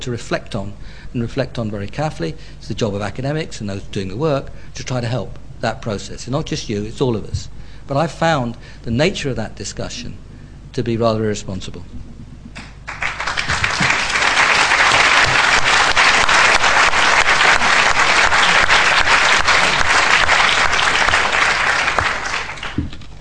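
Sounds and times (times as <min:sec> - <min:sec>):
speech: 0:00.0 - 0:10.2, 0:10.8 - 0:12.1
large crowd applauding: 0:12.6 - 0:23.1.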